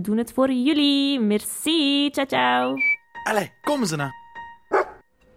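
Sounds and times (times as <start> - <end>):
speech: 0.0 - 4.2
dog barking: 4.7 - 5.0.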